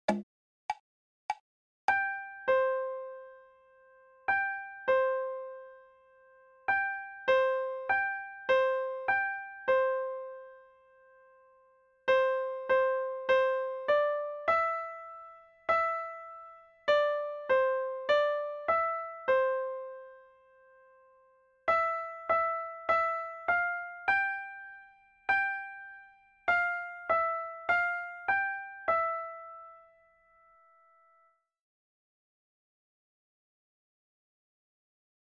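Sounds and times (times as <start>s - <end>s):
piano accompaniment: 1.9s - 11.5s, 12.1s - 30.7s.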